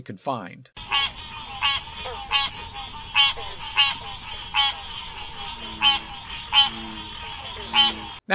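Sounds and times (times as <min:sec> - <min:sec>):
speech: 0:00.0 - 0:00.8
American green tree frog bell-like call: 0:00.8 - 0:08.2
constant hum of night insects: 0:00.8 - 0:08.2.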